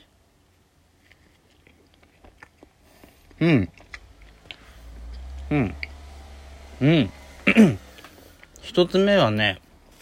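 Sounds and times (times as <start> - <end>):
biting and chewing on an egg salad sandwich with soft bread: 0.5 - 6.1
mouth sounds: 3.2 - 4.0, 5.0 - 6.0, 6.8 - 7.9
speech: 3.4 - 3.8, 5.5 - 5.8, 6.8 - 7.8, 8.8 - 9.6.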